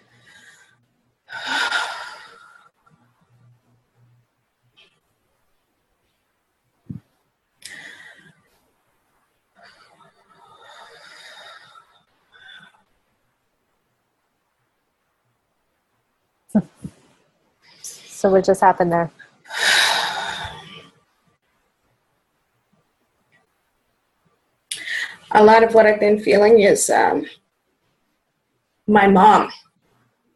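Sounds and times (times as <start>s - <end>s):
person breathing deeply: 0.0s - 2.7s, 7.6s - 8.4s, 9.6s - 12.8s, 19.5s - 20.9s
speech: 18.2s - 19.2s, 25.4s - 27.4s, 28.9s - 29.6s.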